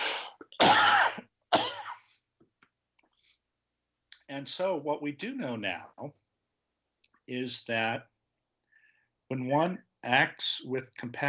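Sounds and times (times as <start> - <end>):
harsh hacking coughs: 0.0 - 2.0
speech: 4.3 - 6.2, 7.3 - 8.1, 9.3 - 11.2.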